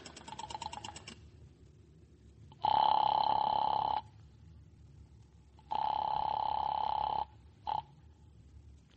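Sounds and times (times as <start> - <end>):
telephone ringing in long buzzing bursts: 2.6 - 4.1, 5.7 - 7.9.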